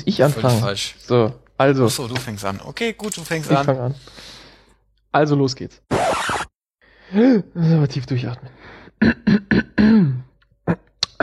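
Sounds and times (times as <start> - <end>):
speech: 0.0 - 4.4, 5.1 - 6.1, 7.1 - 9.6
person clearing throat: 9.0 - 11.2.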